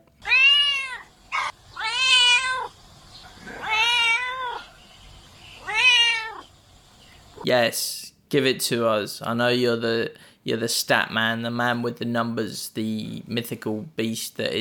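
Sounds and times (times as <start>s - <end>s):
cat meowing: 0.2s - 4.8s, 5.5s - 6.5s
speech: 7.4s - 14.5s.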